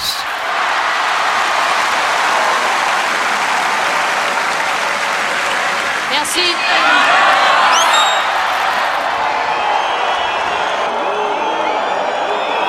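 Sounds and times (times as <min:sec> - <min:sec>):
tennis stadium crowd applauding and cheering: 0:00.0 - 0:12.6
speech: 0:06.4 - 0:07.1.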